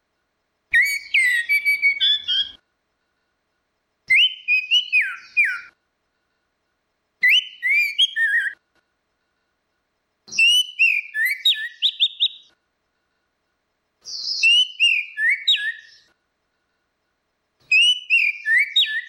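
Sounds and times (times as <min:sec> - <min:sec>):
orange-headed thrush whistled song: 0:00.7 - 0:02.6, 0:04.1 - 0:05.8, 0:07.2 - 0:08.6, 0:10.3 - 0:12.6, 0:14.0 - 0:16.2, 0:17.6 - 0:19.0.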